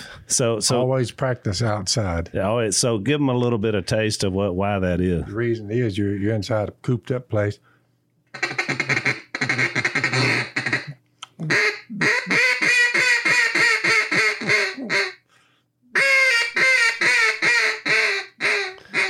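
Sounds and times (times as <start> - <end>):
speech: 0.3 - 7.7
duck call imitating hen mallard quacks: 8.3 - 15.2, 15.9 - 19.0.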